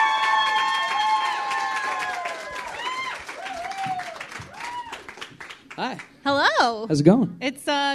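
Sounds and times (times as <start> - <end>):
whoops and shrill cheers: 0.0 - 5.2
crowd sustained applause with dense clapping: 0.0 - 6.0
speech: 5.8 - 7.9.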